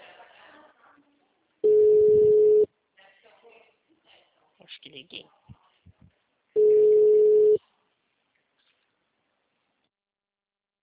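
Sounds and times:
telephone ringback tone with no answer: 1.6s - 2.7s, 6.6s - 7.6s
speech: 5.0s - 5.4s.

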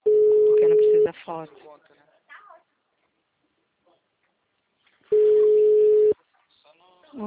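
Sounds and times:
telephone busy tone after a dropped call: 0.0s - 1.1s, 5.1s - 6.2s
speech: 1.3s - 2.1s.

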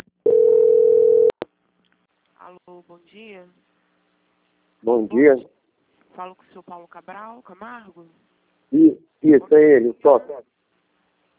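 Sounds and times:
steady single-pitch telephone line tone during a call transfer: 0.2s - 1.4s
speech: 2.8s - 3.7s, 4.8s - 5.6s, 6.2s - 10.5s.

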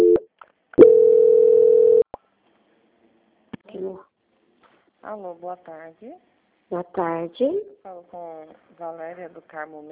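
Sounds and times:
telephone tones as a bank call is transferred: 0.8s - 2.0s
speech: 5.0s - 9.9s.

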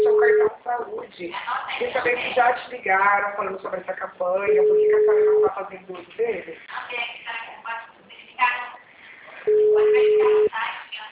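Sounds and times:
telephone busy tone: 0.0s - 0.5s, 4.5s - 5.5s, 9.5s - 10.5s
speech: 1.1s - 7.0s
woman's recorded phone announcement in Portuguese: 1.2s - 2.8s, 6.7s - 11.1s.

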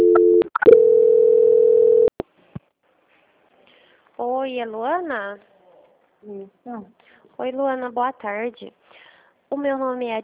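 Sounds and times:
telephone beep during a call transfer: 0.0s - 2.1s
speech: 4.5s - 5.5s, 6.2s - 8.8s, 9.5s - 10.2s.

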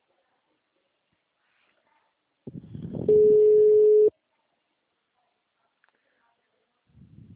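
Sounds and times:
ringback tone of an outgoing telephone call: 3.1s - 4.1s.

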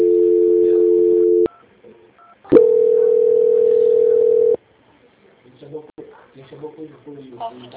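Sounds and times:
steady telephone tones during a call transfer: 0.0s - 1.6s, 2.2s - 4.6s.

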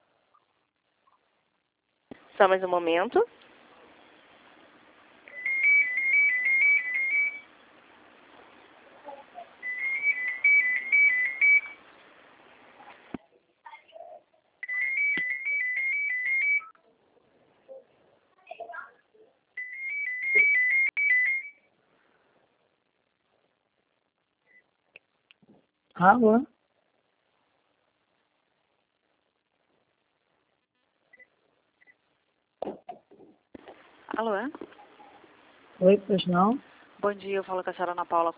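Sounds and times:
speech: 2.4s - 3.4s, 26.0s - 26.5s, 35.9s - 38.3s
telephone ringing on an outgoing call: 5.3s - 7.5s, 9.6s - 11.8s, 14.6s - 16.7s, 19.6s - 21.7s.

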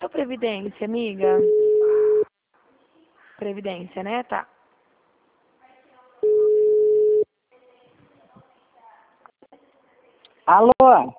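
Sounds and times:
speech: 0.1s - 1.6s, 3.4s - 4.5s, 10.5s - 11.1s
telephone busy tone after a dropped call: 1.4s - 2.2s, 6.2s - 7.2s.

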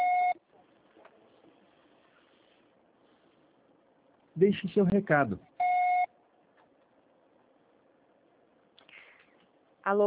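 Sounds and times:
voicemail beep on a phone line: 0.0s - 0.4s, 5.6s - 6.1s
speech: 4.4s - 5.5s.

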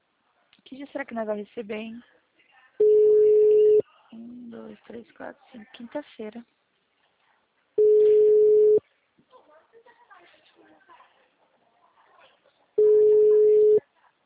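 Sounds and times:
speech: 0.7s - 2.2s, 4.1s - 6.6s
telephone busy tone: 2.8s - 3.8s, 7.8s - 8.8s, 12.8s - 13.8s.

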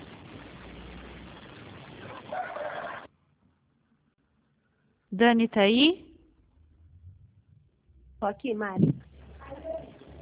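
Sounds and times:
steady hiss of noise: 0.0s - 10.2s
neighbor's roosters crowing: 2.1s - 3.1s
speech: 5.1s - 6.1s, 8.2s - 9.0s.

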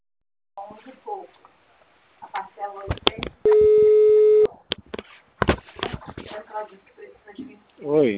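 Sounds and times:
telephone busy tone after a dropped call: 3.4s - 4.5s
speech: 6.6s - 8.1s.

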